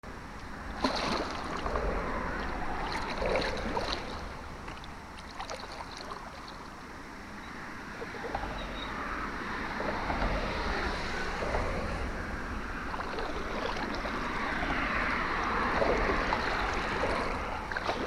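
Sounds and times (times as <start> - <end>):
paddling noises composition: 0.4 - 6.9, 7.6 - 18.0.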